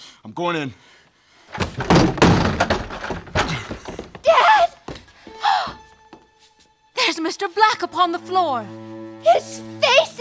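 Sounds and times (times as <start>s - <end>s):
speech: 0.2s - 2.4s, 7.2s - 10.2s
lock cracking under repeated blows: 1.5s - 5.1s
heavy thuds of a door being forced open: 1.5s - 5.2s
rattling of a forced door: 1.5s - 5.9s.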